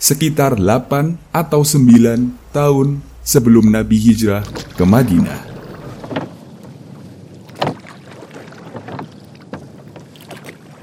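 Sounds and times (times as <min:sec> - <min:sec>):
speech: 0:00.0 - 0:05.5
light wind rumble: 0:00.0 - 0:07.7
small boat moving through water with splashing and wash: 0:02.0 - 0:10.8.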